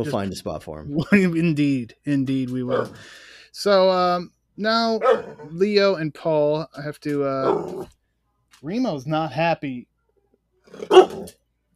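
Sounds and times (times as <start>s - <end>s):
speech: 0.0s - 8.0s, 8.6s - 9.9s, 10.7s - 11.4s
dog barking: 2.7s - 3.0s, 5.0s - 5.5s, 7.4s - 7.8s, 10.7s - 11.3s.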